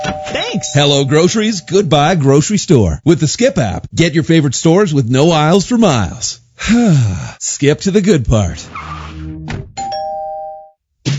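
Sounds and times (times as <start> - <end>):
electronic school bell chime marking final dismissal: 0.0 - 1.8, 9.8 - 10.8
speech: 0.0 - 9.0.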